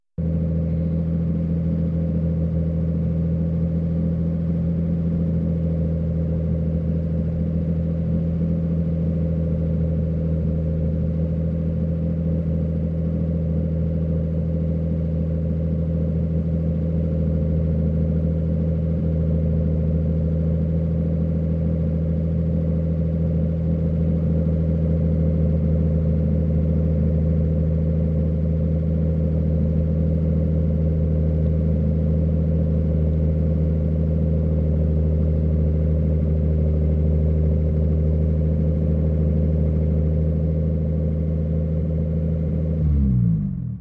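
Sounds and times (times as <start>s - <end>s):
car engine idling: 0.2s - 43.7s.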